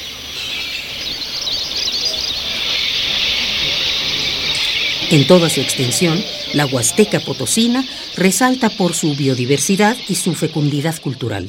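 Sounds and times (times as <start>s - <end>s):
flock of thousands of swallows chirping and fluttering emerging from a cave: 0.2s - 11.4s
speech: 5.1s - 11.4s.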